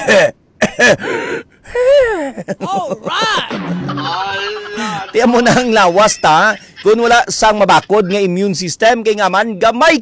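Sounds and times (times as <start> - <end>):
speech: 0.0 - 1.2, 2.3 - 3.6, 5.2 - 9.9
person coughing: 0.0 - 3.5
person making strained groaning vocal sounds: 1.7 - 3.6
laughter: 1.9 - 5.8.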